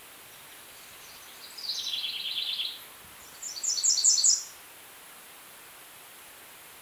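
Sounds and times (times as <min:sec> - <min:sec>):
American redstart Setophaga ruticilla singing: 0:00.3 - 0:04.6.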